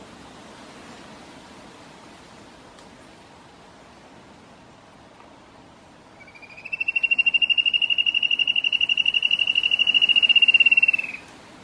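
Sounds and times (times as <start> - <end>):
spot-backed antshrike trill song: 6.2 - 11.3.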